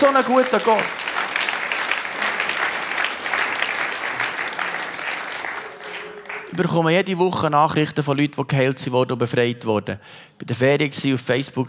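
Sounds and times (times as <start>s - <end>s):
speech: 0.0s - 1.1s, 6.6s - 11.6s
audience applauding: 0.0s - 7.0s.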